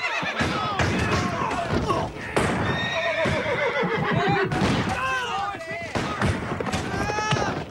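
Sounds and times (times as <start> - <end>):
hooves clattering: 0.0 - 7.6
several horses whinnying and neighing as they rear up and buck: 0.0 - 7.6
gunfire: 0.4 - 3.4, 4.5 - 5.0, 5.8 - 7.4
thumps: 0.4 - 7.6.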